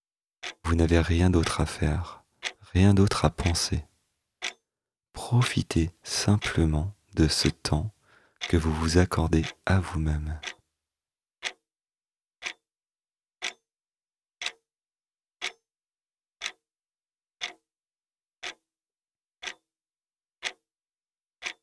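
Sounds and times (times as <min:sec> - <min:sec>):
clock ticking: 0:00.4 - 0:03.8, 0:04.4 - 0:04.6, 0:05.2 - 0:10.6, 0:17.4 - 0:17.6
speech: 0:00.7 - 0:03.9, 0:05.2 - 0:10.6.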